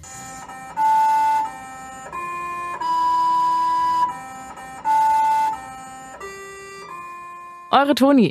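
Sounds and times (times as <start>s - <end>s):
buzzy machine-made melody played by a small robot rover on Mars: 0.0s - 8.0s
speech: 7.8s - 8.2s.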